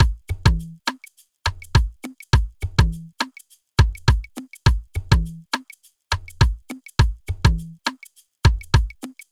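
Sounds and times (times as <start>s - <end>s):
drum loop at 103 BPM: 0.0s - 3.1s, 3.8s - 5.4s, 6.1s - 7.8s, 8.5s - 9.2s.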